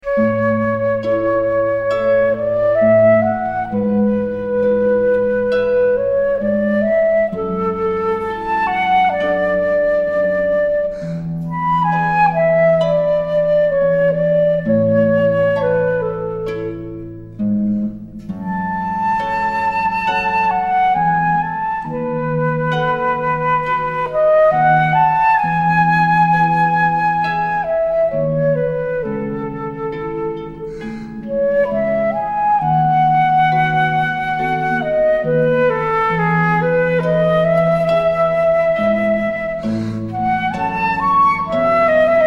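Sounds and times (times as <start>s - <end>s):
flute playing arioso: 0.0s - 42.2s
harp playing arioso: 0.0s - 42.2s.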